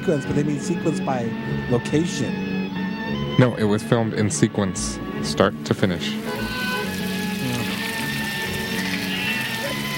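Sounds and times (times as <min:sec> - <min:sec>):
speech: 0:00.0 - 0:02.5, 0:03.4 - 0:06.6
steady rain: 0:06.1 - 0:09.9.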